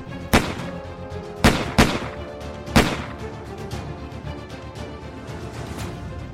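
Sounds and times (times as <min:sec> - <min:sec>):
low steady background: 0:00.0 - 0:06.3
sharp gunshots at 3 in the morning: 0:00.2 - 0:03.4.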